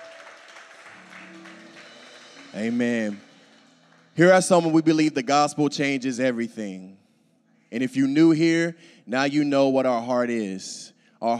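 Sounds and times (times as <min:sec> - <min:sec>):
audience applauding: 0:00.0 - 0:05.0
speech: 0:02.5 - 0:03.3, 0:04.2 - 0:07.0, 0:07.7 - 0:11.3.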